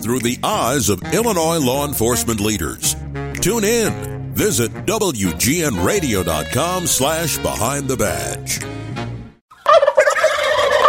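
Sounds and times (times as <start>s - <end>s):
speech: 0.0s - 8.9s
turkey gobbling: 9.5s - 10.8s.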